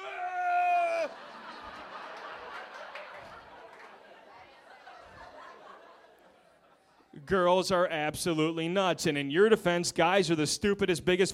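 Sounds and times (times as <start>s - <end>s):
woman screaming high-pitched in protest: 0.0s - 1.2s
scattered laughter from a small group: 1.0s - 7.0s
speech: 7.2s - 11.3s.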